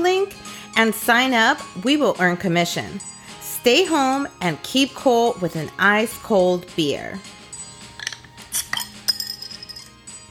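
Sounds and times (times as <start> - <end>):
speech: 0.2 - 7.4
glasses clinking in a toast: 7.9 - 10.1.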